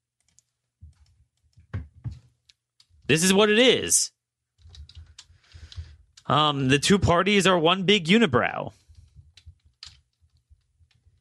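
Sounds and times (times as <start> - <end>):
quiet irregular typing on a computer keyboard: 0.2 - 3.0, 4.6 - 6.3, 8.9 - 11.1
speech: 3.1 - 4.2, 6.3 - 8.8.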